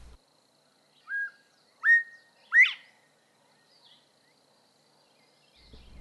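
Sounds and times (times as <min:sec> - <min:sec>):
northern bobwhite whistling bob-white call: 0:01.0 - 0:02.9.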